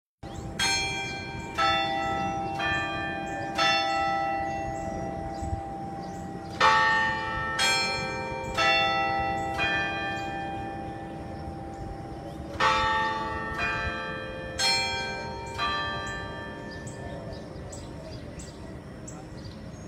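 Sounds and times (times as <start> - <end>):
tower bells: 0.3 - 19.8.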